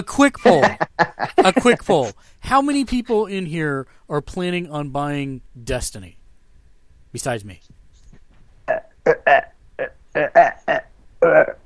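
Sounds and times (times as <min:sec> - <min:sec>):
speech: 0:00.0 - 0:06.2, 0:07.1 - 0:07.8, 0:08.7 - 0:11.6
laughter: 0:00.4 - 0:02.1
short throaty belches: 0:08.7 - 0:11.6.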